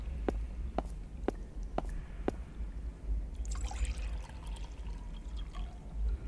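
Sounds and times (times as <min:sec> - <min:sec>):
low rumble: 0:00.0 - 0:06.2
water trickling and pouring into a pot in a video game: 0:03.4 - 0:06.0.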